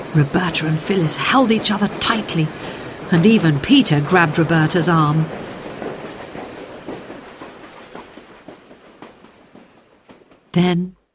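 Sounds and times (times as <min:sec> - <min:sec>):
train rushing past: 0:00.0 - 0:10.6
train wheels clattering over rail joints: 0:00.0 - 0:11.1
speech: 0:00.1 - 0:05.5, 0:10.6 - 0:11.0.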